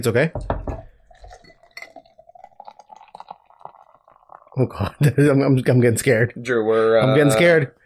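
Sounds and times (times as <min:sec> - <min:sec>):
speech: 0:00.0 - 0:00.5, 0:04.6 - 0:07.8
beer poured hard from a can into a glass: 0:00.6 - 0:05.8
fizzy bubbling of beer as a foamy head builds: 0:00.8 - 0:06.2.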